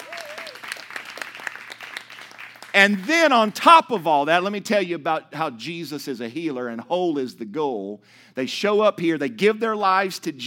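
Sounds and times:
audience clapping: 0:00.0 - 0:03.6
speech: 0:02.8 - 0:10.4.

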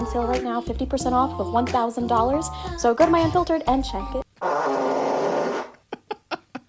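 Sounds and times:
speech: 0:00.1 - 0:05.0
fart: 0:04.4 - 0:05.8.

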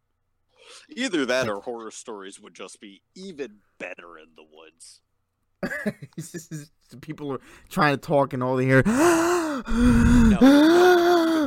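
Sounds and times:
speech: 0:00.9 - 0:11.4
voice imitating heavy rasping breathing: 0:08.9 - 0:11.4.

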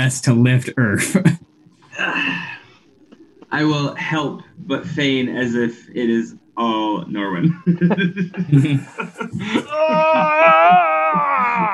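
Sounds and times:
speech: 0:00.0 - 0:02.4, 0:03.5 - 0:11.7
laughter: 0:07.2 - 0:11.7
man voice-acting a strained scream: 0:09.7 - 0:11.7.

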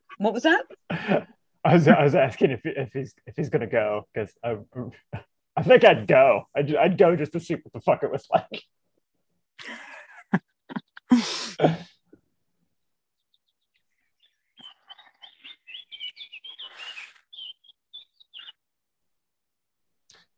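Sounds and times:
speech: 0:00.2 - 0:08.8, 0:09.6 - 0:10.5, 0:11.2 - 0:11.9
laughter: 0:00.9 - 0:08.6, 0:09.6 - 0:11.8
throat-clearing cough: 0:11.5 - 0:11.9
birds chirping and singing: 0:13.2 - 0:18.6.

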